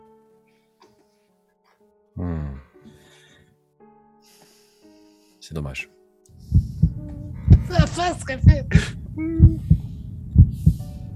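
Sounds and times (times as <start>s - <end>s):
speech: 5.5s - 6.0s, 8.0s - 9.7s
heartbeat sound effect thumping in double beats: 6.5s - 11.1s.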